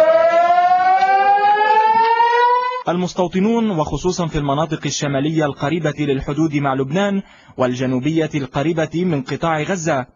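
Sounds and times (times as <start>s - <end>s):
civil defense air raid siren wailing: 0.0s - 2.9s
speech: 2.9s - 10.1s.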